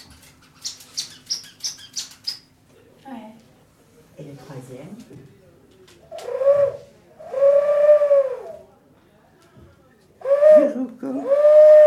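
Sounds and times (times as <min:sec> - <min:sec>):
speech: 0:04.5 - 0:05.4
pigeon cooing: 0:06.1 - 0:08.7, 0:10.2 - 0:11.8.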